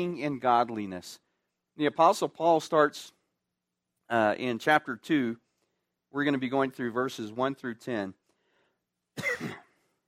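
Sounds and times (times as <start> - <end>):
speech: 0.0 - 1.2, 1.8 - 3.2, 4.1 - 5.4, 6.1 - 8.2, 9.2 - 9.6
person coughing: 9.2 - 10.0.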